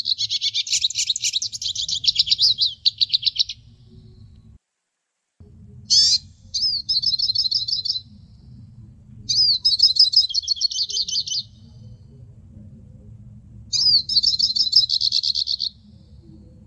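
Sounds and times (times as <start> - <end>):
hooded siskin twittering song: 0.0 - 3.9, 5.9 - 8.5, 9.2 - 12.0, 13.7 - 16.0
quiet low hum: 0.0 - 16.6.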